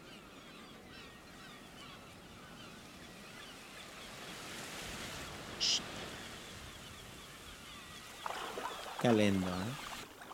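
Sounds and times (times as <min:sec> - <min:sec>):
sea waves rushing: 0:01.8 - 0:10.3
speech: 0:05.6 - 0:06.0, 0:09.0 - 0:09.9
bright splash or chirp: 0:08.2 - 0:10.3.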